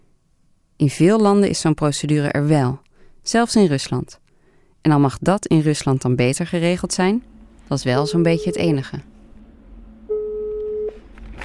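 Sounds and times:
low noise on a telephone line: 0.0s - 11.4s
speech: 0.8s - 4.2s, 4.8s - 9.1s
telephone line tone while a call is placed: 7.9s - 9.0s, 10.1s - 11.0s.

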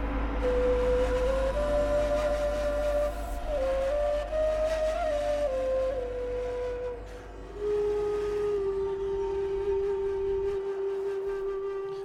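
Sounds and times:
low hum: 0.0s - 12.0s
whistle playing slow held notes in a studio: 0.4s - 12.0s.

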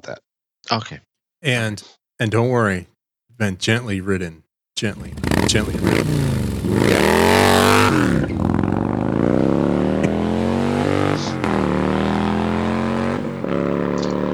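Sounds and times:
speech: 0.0s - 8.3s
motorcycle engine with black anodized finish running and revving: 5.0s - 14.3s.

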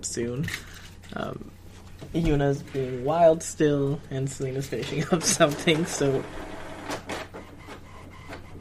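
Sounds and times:
speech: 0.0s - 6.5s
printer printing with whirring and scraping over motor hum: 4.7s - 8.6s.

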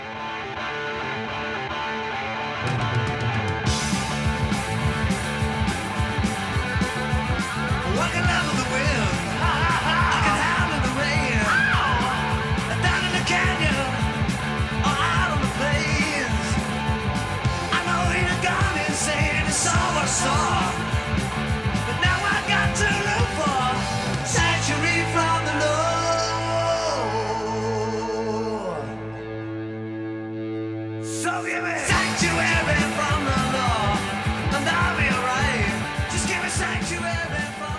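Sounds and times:
two loud distorted guitars in a 1980 heavy metal studio demo: 0.0s - 37.7s
shouted heavy metal vocals: 7.8s - 14.2s, 17.7s - 21.2s, 21.9s - 29.1s, 31.1s - 37.7s.

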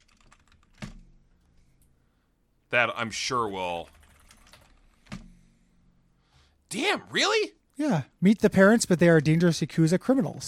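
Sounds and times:
typing on a computer keyboard: 0.0s - 1.1s, 3.8s - 5.3s
speech: 2.7s - 4.0s, 6.7s - 10.4s.

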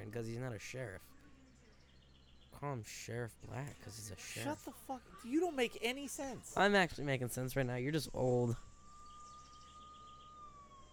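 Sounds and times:
speech: 0.0s - 1.1s, 2.5s - 8.7s
constant hum: 0.0s - 10.9s
police car siren: 9.2s - 10.9s.

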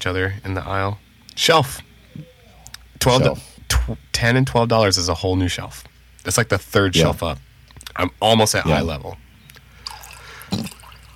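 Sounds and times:
speech: 0.0s - 2.3s, 3.0s - 9.2s
faint trickle: 9.8s - 11.1s
liquid pouring into coffee: 9.8s - 11.1s.

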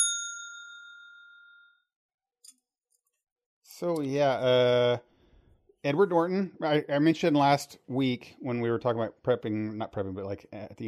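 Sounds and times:
bright bell being struck: 0.0s - 1.9s
speech: 3.8s - 5.1s, 5.8s - 10.8s.

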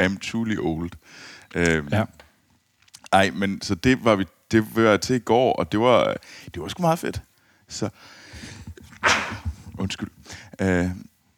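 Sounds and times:
speech: 0.0s - 2.2s, 3.1s - 11.1s
person sneezing: 8.8s - 9.7s.

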